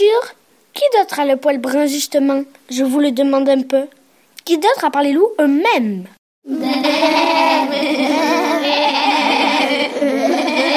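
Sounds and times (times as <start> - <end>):
speech: 0.0 - 9.1
laughter: 6.5 - 10.7
flock of ewes bleating in a sheepfold: 6.6 - 9.9.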